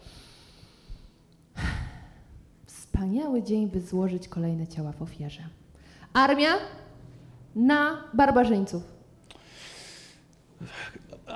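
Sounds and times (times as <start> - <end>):
person taking a big deep breath: 0.0 - 2.4, 9.3 - 10.3
speech: 3.0 - 6.8, 7.6 - 9.0.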